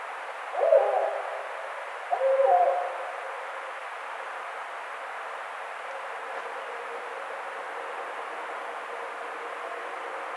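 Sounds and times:
barred owl hooting: 0:00.6 - 0:01.4, 0:02.1 - 0:03.0.

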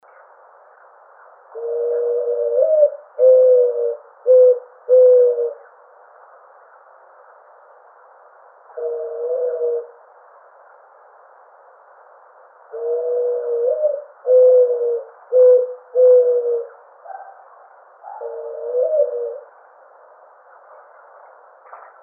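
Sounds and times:
birds: 0:00.0 - 0:05.9, 0:12.7 - 0:19.6, 0:20.3 - 0:22.0
Mourning Dove: 0:01.1 - 0:06.0, 0:08.6 - 0:10.9, 0:12.6 - 0:22.0.

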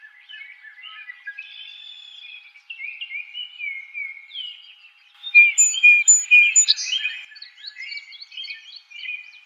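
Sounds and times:
Song Sparrow singing: 0:05.2 - 0:07.9.

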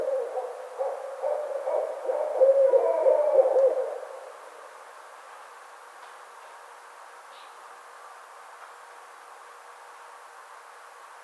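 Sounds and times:
barred owl hooting: 0:00.0 - 0:04.5.

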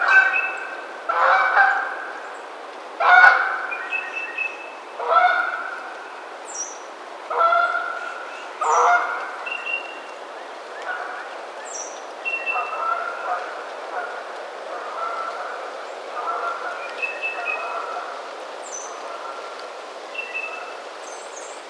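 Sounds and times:
Canada goose honking: 0:00.0 - 0:02.1, 0:03.0 - 0:03.7, 0:05.0 - 0:05.8, 0:07.3 - 0:09.4, 0:12.4 - 0:18.2.

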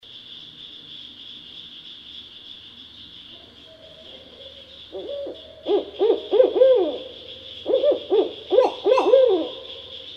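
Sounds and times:
barred owl hooting: 0:04.4 - 0:10.1.

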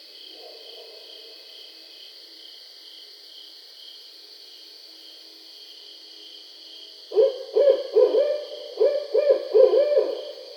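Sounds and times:
barred owl giving low hoots: 0:07.1 - 0:10.5.

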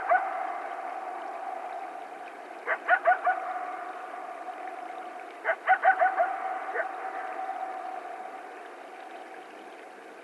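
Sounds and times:
several coyotes yipping: 0:00.0 - 0:02.0, 0:02.6 - 0:04.1, 0:05.4 - 0:07.7.

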